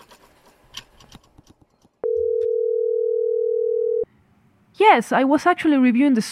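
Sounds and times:
telephone dial tone of an outgoing call to a cell phone: 2.0 - 4.1
speech: 4.9 - 6.3.

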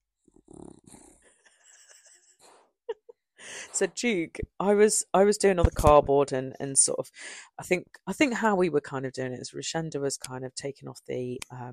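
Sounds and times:
dog snorting and snuffling: 0.4 - 2.6
speech: 3.7 - 11.7.

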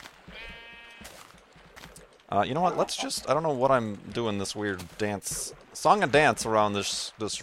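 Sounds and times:
sheep bleating: 0.2 - 1.2
speech: 2.3 - 7.4.

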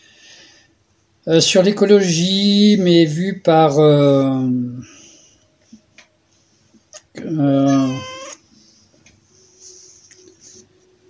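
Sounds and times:
speech: 1.2 - 5.0, 7.2 - 8.1
female cat meowing: 7.7 - 8.4.

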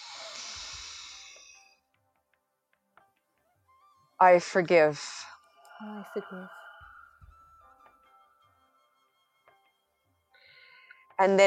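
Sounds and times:
deep inhale through the nose during a guided breathing exercise: 0.0 - 1.8, 10.4 - 11.0
speech: 4.2 - 6.6, 11.2 - 11.4.

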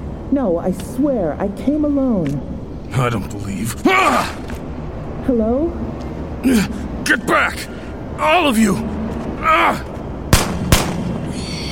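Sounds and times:
speech: 0.3 - 4.6, 5.3 - 9.9
gunshots: 10.3 - 11.3.

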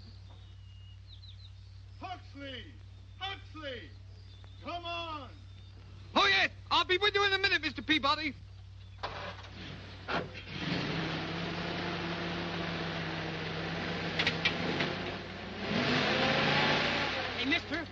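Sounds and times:
speech: 2.1 - 4.0, 4.6 - 5.4, 6.2 - 8.4, 17.6 - 17.9
car engine turning over, revving and pulling away: 9.1 - 17.9.

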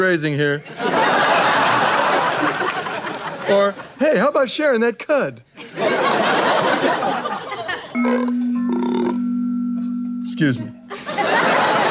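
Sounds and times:
speech: 0.0 - 1.3, 3.5 - 7.4, 8.0 - 8.4, 10.4 - 10.8
laughter: 0.6 - 4.0, 5.6 - 8.3, 10.9 - 11.8
broken doorbell wheezing and buzzing: 8.0 - 10.9.

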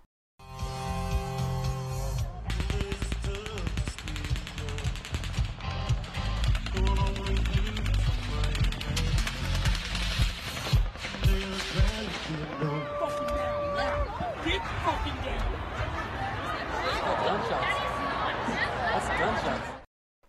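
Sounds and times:
crowd noise at outdoor concert: 0.9 - 19.9
rapid automatic gunfire at outdoor concert: 2.5 - 12.5
laughter: 12.2 - 19.9.

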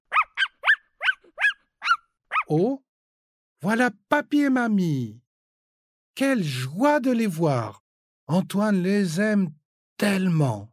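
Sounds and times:
dog barking excitedly: 0.1 - 2.5
speech: 2.5 - 2.8, 3.6 - 5.2, 6.2 - 10.7.

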